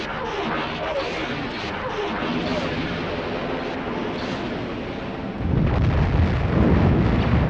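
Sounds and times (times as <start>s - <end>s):
forward turbolasers firing on a star destroyer: 0.0s - 7.4s
explosions: 5.4s - 7.4s
forward ion cannons firing on a star destroyer: 5.4s - 7.4s.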